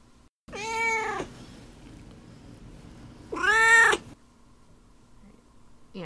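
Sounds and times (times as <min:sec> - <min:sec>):
quiet hum: 0:00.0 - 0:06.0
cat meowing: 0:00.5 - 0:01.3, 0:03.3 - 0:04.0.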